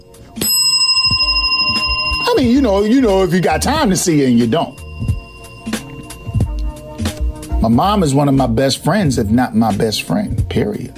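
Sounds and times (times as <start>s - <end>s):
bell ringing with bright metallic strikes: 0.3s - 8.4s
speech: 2.4s - 4.8s, 7.6s - 10.9s.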